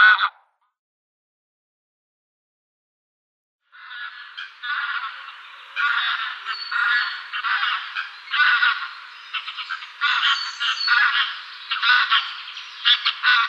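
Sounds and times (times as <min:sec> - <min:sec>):
greylag geese honking: 0:03.8 - 0:13.4.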